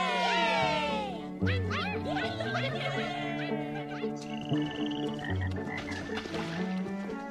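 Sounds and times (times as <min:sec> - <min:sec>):
laughter: 0:00.0 - 0:04.5
chorus of frogs croaking at a pond: 0:03.8 - 0:06.7.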